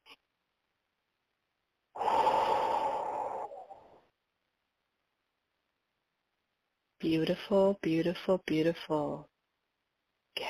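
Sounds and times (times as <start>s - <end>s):
deep slow breath during a meditation: 2.0s - 4.1s
speech: 7.0s - 9.3s.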